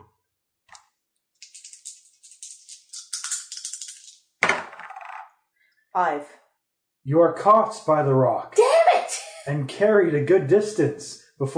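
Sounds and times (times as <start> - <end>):
two dice for a tabletop board game rattling and clattering: 1.4 - 5.3
speech: 6.0 - 6.4, 7.0 - 8.6, 9.5 - 11.5.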